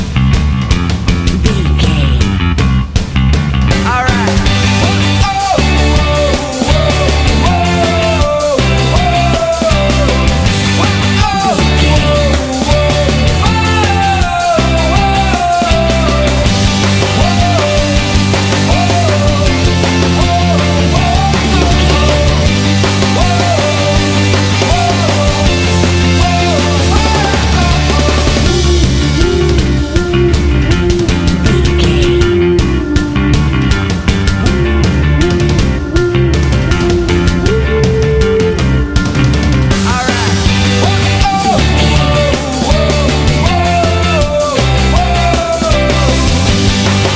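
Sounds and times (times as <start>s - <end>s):
indie rock song with vocals: 0.2s - 47.1s.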